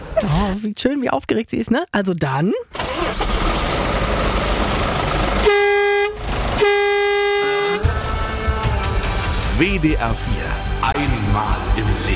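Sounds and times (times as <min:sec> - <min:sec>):
speech: 0:00.4 - 0:03.2, 0:09.6 - 0:12.1
heavy truck engine rumbling: 0:02.7 - 0:12.1
blaring truck air-horn blasts: 0:05.4 - 0:08.0.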